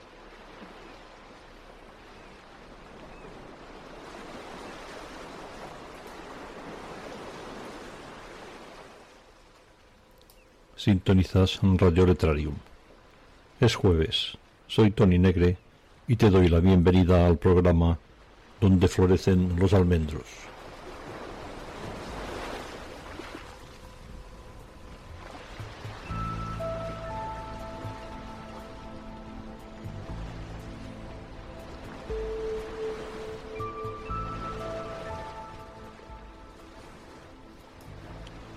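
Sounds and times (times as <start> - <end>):
sea waves washing ashore: 0.0 - 38.5
speech: 10.8 - 12.7, 13.6 - 20.5
soft sustained musical tones: 23.5 - 38.5.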